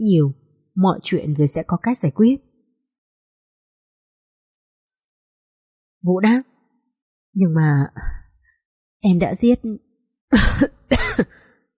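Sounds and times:
speech: 0.0 - 2.5, 6.0 - 6.5, 7.4 - 8.2, 9.0 - 11.4
doctor fake coughing with hand raised to his mouth: 10.4 - 11.3.

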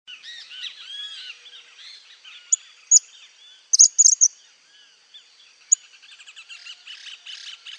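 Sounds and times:
background chorus of other songbirds: 0.1 - 7.7
cattle tyrant Machetornis rixosa giving high sharp call notes: 3.8 - 4.3.

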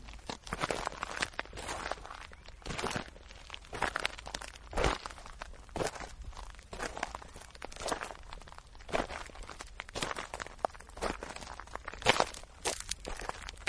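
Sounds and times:
heavy human footsteps crunching in an underground tunnel behind a stone door: 0.0 - 13.6.

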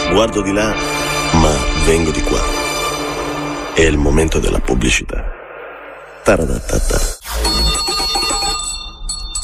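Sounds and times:
speech: 0.1 - 2.6, 3.8 - 5.4, 6.2 - 7.6
small bell ringing: 7.6 - 9.4.

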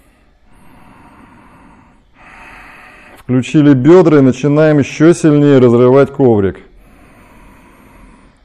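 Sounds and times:
ujjayi breathing during a yoga exercise: 0.0 - 3.3, 6.7 - 8.4
speech: 3.3 - 6.7.

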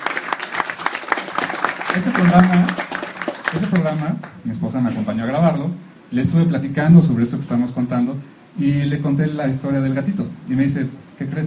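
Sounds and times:
audience applause at a live comics talk event: 0.0 - 4.3
speech: 2.0 - 2.9, 3.5 - 11.4.

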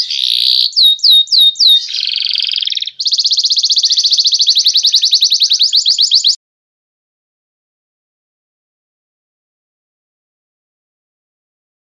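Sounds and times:
songbird training song with whistles, buzzy phrase and high trill: 0.0 - 6.4.

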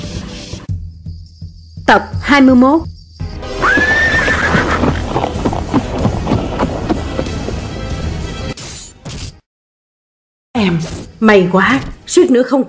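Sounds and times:
speech: 1.9 - 2.9, 10.6 - 12.6
horse neighing: 3.5 - 7.3
horse hooves clip-clopping: 3.6 - 8.3.

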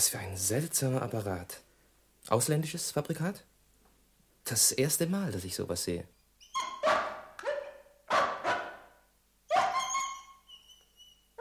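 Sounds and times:
speech: 0.0 - 1.6, 2.3 - 3.5, 4.4 - 6.7
dog barking and howling: 6.5 - 10.8.

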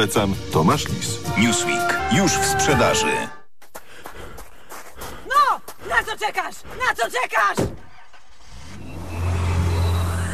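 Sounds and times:
speech: 0.0 - 3.4, 6.2 - 7.8
Nissan car engine revving: 8.4 - 10.3.

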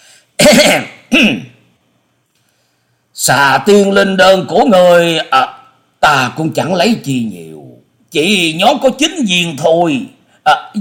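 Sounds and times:
dry throat-clearing cough: 0.4 - 1.6
speech: 0.5 - 1.5, 3.2 - 10.8.

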